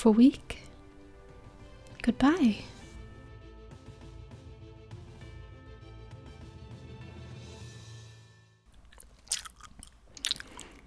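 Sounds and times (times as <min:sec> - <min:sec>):
speech: 0:00.0 - 0:00.6, 0:02.0 - 0:02.8
music: 0:00.0 - 0:08.7
wet crunchy chewing close to the microphone: 0:08.7 - 0:10.8.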